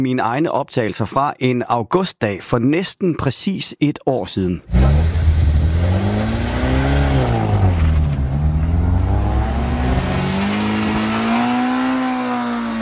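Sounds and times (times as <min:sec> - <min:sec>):
speech: 0:00.0 - 0:05.2
old classic car engines revving uphill: 0:04.7 - 0:12.8.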